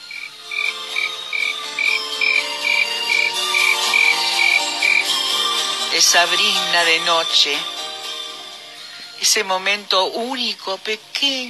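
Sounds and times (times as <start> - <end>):
cricket chirping at night: 0.0 - 5.1
speech: 6.0 - 7.8, 9.2 - 11.4.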